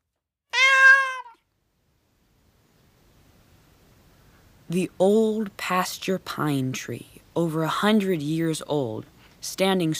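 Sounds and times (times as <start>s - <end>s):
cat meowing: 0.5s - 1.4s
speech: 4.7s - 9.9s.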